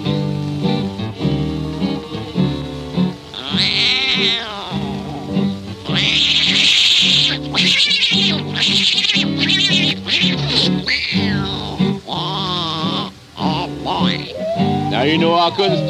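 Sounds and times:
steady musical backing: 0:00.0 - 0:15.8
tomcats fighting and yowling: 0:03.3 - 0:15.8.

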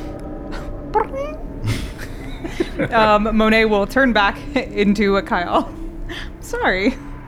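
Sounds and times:
low rumbling noise: 0:00.0 - 0:07.2
cat meowing: 0:01.0 - 0:01.5
laughter: 0:01.6 - 0:03.5
speech: 0:02.8 - 0:05.8, 0:06.5 - 0:07.1.

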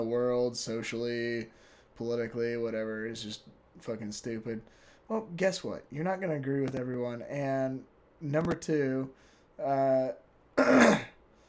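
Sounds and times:
speech: 0:00.0 - 0:11.1
person clearing throat: 0:10.6 - 0:11.2.

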